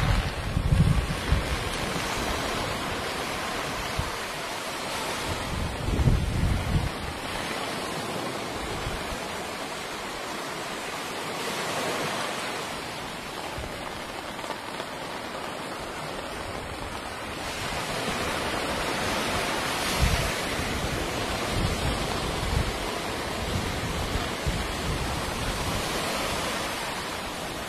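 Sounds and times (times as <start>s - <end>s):
low rumbling swells of surf: 0.0s - 27.6s
steady hiss of rain by the sea in the early morning: 0.0s - 27.6s.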